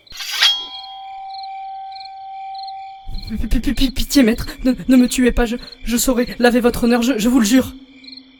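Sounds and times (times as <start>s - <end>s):
sword blade metallic clang: 0.0s - 3.2s
speech: 3.3s - 7.8s.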